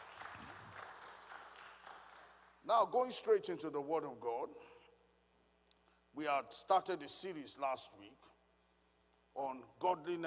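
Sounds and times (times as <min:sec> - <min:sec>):
church audience clapping during a morning service: 0:00.0 - 0:02.7
speech: 0:02.6 - 0:04.8, 0:06.2 - 0:08.3, 0:09.4 - 0:10.2.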